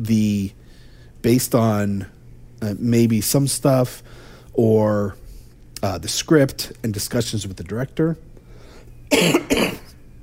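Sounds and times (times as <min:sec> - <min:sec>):
speech: 0:00.0 - 0:00.6, 0:01.2 - 0:05.2, 0:05.8 - 0:08.3, 0:09.1 - 0:09.7
harsh raspy coughs: 0:09.1 - 0:10.0.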